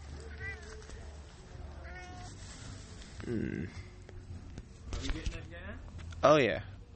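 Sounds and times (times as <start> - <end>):
murmured voices: 0.0 - 5.2
cat meowing in short rising cries: 0.2 - 1.2, 1.8 - 2.4
speech: 3.3 - 3.9, 5.1 - 6.7.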